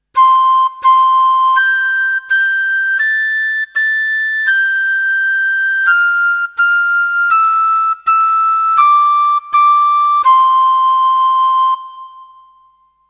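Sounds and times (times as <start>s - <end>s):
piccolo: 0.1s - 13.0s.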